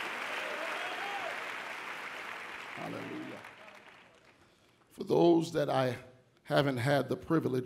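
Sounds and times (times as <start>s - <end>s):
audience clapping: 0.0s - 4.9s
speech: 2.8s - 3.6s, 5.0s - 7.6s.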